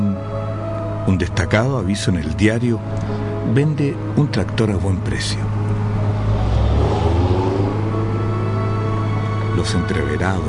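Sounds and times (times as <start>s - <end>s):
speech: 1.1s - 5.6s, 9.6s - 10.4s
jeep engine rumbling while driving on rural roads: 5.2s - 10.3s.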